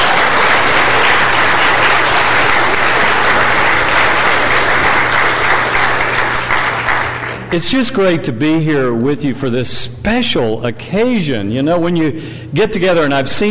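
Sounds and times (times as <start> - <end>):
audience applauding for choir, choir director and organist: 0.0 - 7.6
speech: 7.5 - 13.5.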